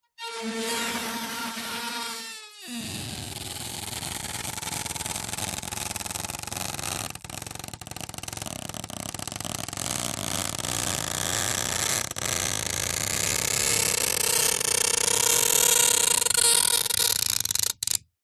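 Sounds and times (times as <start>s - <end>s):
long plastic tape rub squeak and creak foley: 0.2s - 18.1s.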